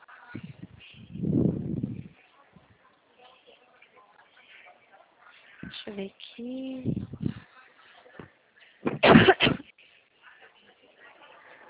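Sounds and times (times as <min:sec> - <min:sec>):
speech: 0:05.9 - 0:07.3
person coughing: 0:08.9 - 0:09.6.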